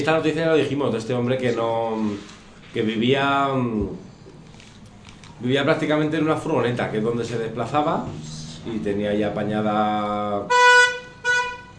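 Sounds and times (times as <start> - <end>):
speech: 0.0 - 4.1, 5.4 - 10.7
car horn honking outside: 10.4 - 11.7.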